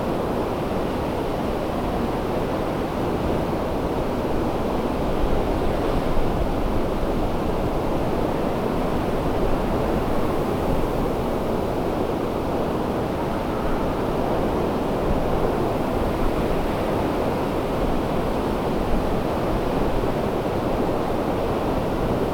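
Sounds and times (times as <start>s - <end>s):
ambient wind: 0.0s - 22.3s.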